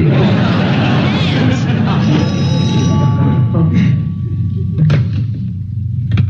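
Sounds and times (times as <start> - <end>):
laughter: 0.0 - 4.0
voices: 0.0 - 5.6
heavy rumbling background: 1.5 - 6.2
telephone ringing with a steady electronic tone: 1.7 - 5.2.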